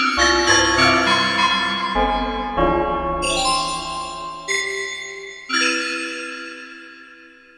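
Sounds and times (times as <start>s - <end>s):
bell ringing: 0.2s - 7.5s.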